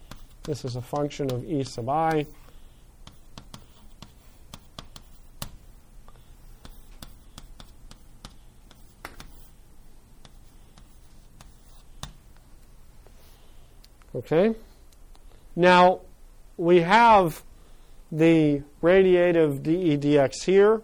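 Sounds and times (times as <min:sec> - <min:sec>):
lecturer writing on a board during a physics lecture: 0:00.0 - 0:12.4
faint steady hiss: 0:00.0 - 0:20.8
speech: 0:00.5 - 0:02.4, 0:14.2 - 0:14.7, 0:15.6 - 0:16.0, 0:16.6 - 0:17.5, 0:18.1 - 0:20.8.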